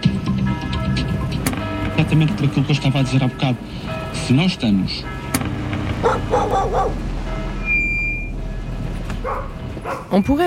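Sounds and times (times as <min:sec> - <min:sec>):
steady low hum: 0:00.1 - 0:10.2
speech: 0:02.0 - 0:05.2, 0:06.0 - 0:07.1, 0:10.1 - 0:10.4
several dogs barking: 0:05.3 - 0:07.6, 0:09.1 - 0:10.4.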